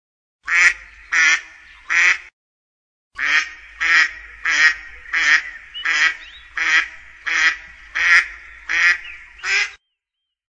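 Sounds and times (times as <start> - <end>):
mallard quacking: 0.5 - 2.3, 3.2 - 9.8.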